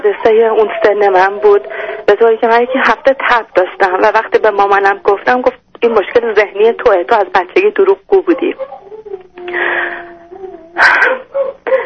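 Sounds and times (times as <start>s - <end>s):
speech: 0.0s - 10.2s
dog whining: 0.1s - 5.2s, 8.3s - 11.8s
dog barking: 10.8s - 11.6s.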